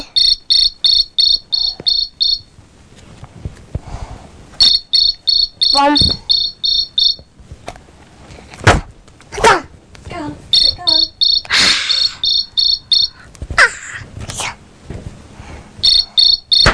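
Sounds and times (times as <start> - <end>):
cricket chirping in rapid high trills: 0.0 - 2.5, 4.6 - 7.2, 10.6 - 13.2, 15.8 - 16.7
speech: 5.8 - 6.2.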